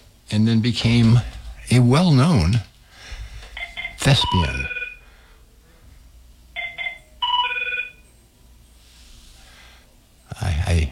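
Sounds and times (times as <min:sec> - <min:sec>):
speech: 0:00.3 - 0:02.7, 0:04.0 - 0:04.8
soft breath or rustle: 0:02.8 - 0:03.6, 0:08.7 - 0:10.0
telephone ringing with an electronic trill: 0:03.6 - 0:05.0, 0:06.6 - 0:08.2.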